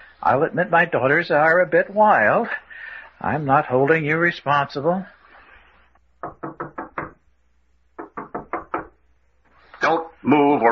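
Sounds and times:
speech: 0:00.2 - 0:05.2, 0:09.9 - 0:10.7
bellboy knocking on a wooden door: 0:06.2 - 0:07.2, 0:08.0 - 0:09.0.

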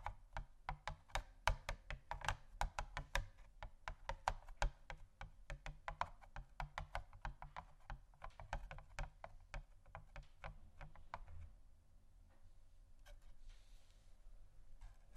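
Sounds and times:
gentle tapping on assorted objects: 0:00.0 - 0:11.5.

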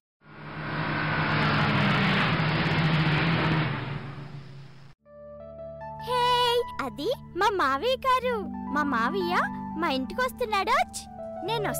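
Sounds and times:
car engine rolling into a village: 0:00.3 - 0:05.0
speech: 0:06.9 - 0:11.7.

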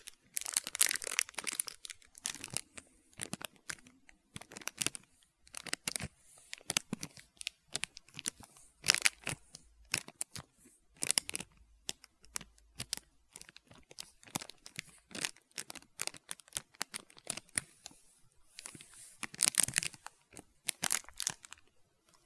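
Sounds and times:
plastic wrapper of a chocolate-coated ice cream bar with nuts crinkling and tearing: 0:00.0 - 0:22.2.

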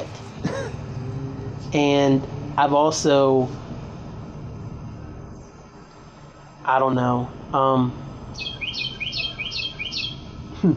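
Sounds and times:
speech: 0:01.7 - 0:03.6, 0:06.7 - 0:08.5
bird chirping: 0:08.2 - 0:10.5.

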